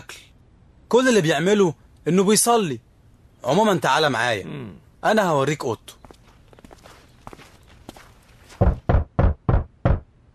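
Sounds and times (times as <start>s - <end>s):
speech: 0.9s - 6.0s
faint footsteps approaching: 5.9s - 9.4s
loud knocks on a door: 8.6s - 10.1s.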